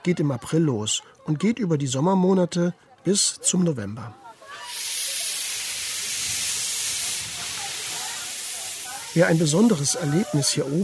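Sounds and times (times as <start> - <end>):
speech: 0.0 - 4.7, 9.2 - 10.8
historic steam locomotive hissing escaping steam: 4.4 - 10.8.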